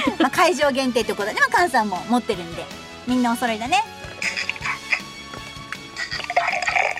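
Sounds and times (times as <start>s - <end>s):
speech: 0.2s - 4.0s
drips and splatters of beer: 5.7s - 6.9s
beer being poured and spilling: 6.0s - 6.9s.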